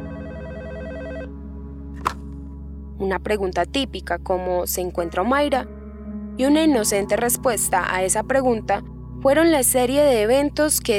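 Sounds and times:
telephone ringing with an electronic trill: 0.0 - 1.3
speech: 3.0 - 5.8, 6.4 - 10.9.

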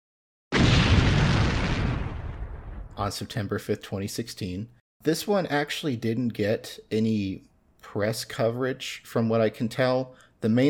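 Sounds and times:
explosion boom with heavy low rumble: 0.5 - 3.1
speech: 3.0 - 10.6.

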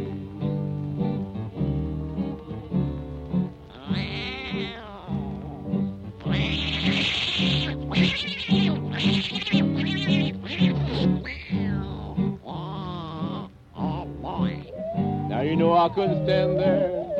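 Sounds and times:
steady musical backing: 0.0 - 17.1
imitated tomcat fight yowls and screeches: 3.7 - 17.1
speech: 15.9 - 17.0.

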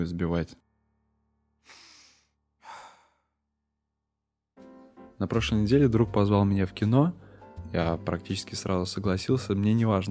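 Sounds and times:
speech: 0.0 - 0.6, 5.2 - 10.0
breathy inhale into the microphone: 1.6 - 3.3, 7.2 - 7.6.

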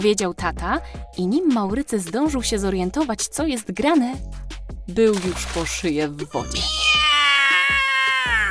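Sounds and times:
speech: 0.0 - 7.8
cat yowling as it is put into bathwater: 6.5 - 8.4.

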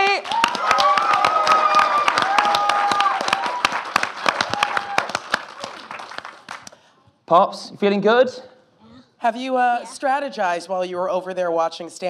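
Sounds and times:
audience applause for a competitor in a contest: 0.0 - 6.8
whoops and cheers: 0.1 - 5.9
speech: 7.3 - 8.5, 9.2 - 12.0.

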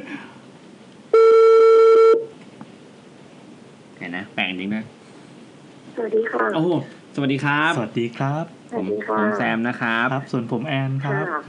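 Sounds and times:
faint noise: 0.0 - 11.4
outgoing telephone call ringback tone: 1.2 - 2.3
speech: 4.1 - 5.0, 6.0 - 11.4.

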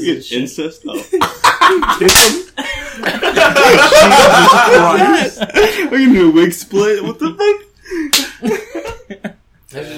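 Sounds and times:
speech: 0.0 - 8.6
laughter: 0.8 - 6.2, 7.9 - 9.9
person vocally imitating a cartoon whip crack: 2.0 - 2.5.

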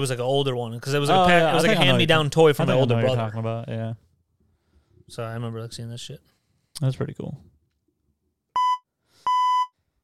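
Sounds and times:
speech: 0.0 - 4.0, 5.1 - 7.5
censor bleep tone covering swear words: 8.6 - 9.7.

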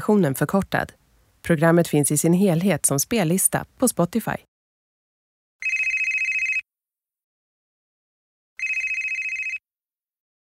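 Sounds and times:
speech: 0.0 - 4.5
mobile phone ringing: 5.6 - 6.6, 8.6 - 9.6.

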